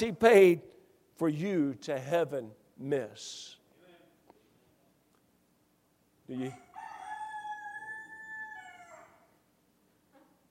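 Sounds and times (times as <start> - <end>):
speech: 0.0 - 3.6, 6.3 - 6.6
rooster crowing: 6.5 - 9.4.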